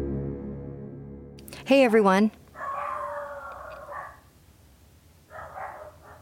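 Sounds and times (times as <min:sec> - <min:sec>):
speech: 0:01.7 - 0:02.4
dogs howling: 0:02.5 - 0:04.3, 0:05.3 - 0:06.1.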